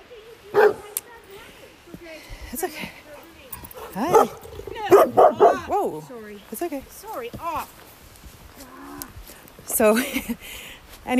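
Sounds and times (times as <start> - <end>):
dog barking: 0.5 - 1.0, 3.8 - 5.8
speech: 2.5 - 3.0, 4.0 - 4.4, 5.0 - 7.8, 9.8 - 11.1.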